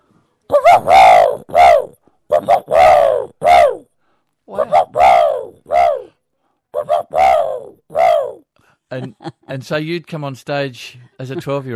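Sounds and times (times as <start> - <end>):
man's voice imitating a dove cooing: 0.5 - 3.9, 4.5 - 6.2, 6.8 - 8.5
speech: 9.0 - 11.7.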